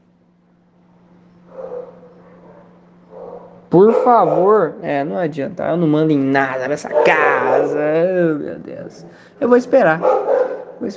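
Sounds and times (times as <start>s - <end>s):
steady low electrical hum: 0.0s - 10.9s
little dog barking in the house: 1.5s - 4.6s, 6.8s - 7.9s, 10.0s - 10.9s
speech: 3.7s - 10.9s.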